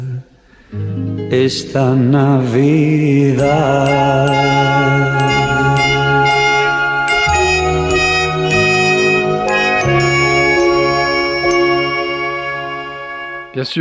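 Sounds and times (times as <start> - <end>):
upbeat 1980s-style Christmas pop tune with synth backing: 0.8 - 13.7
speech: 1.3 - 5.4, 13.6 - 13.7.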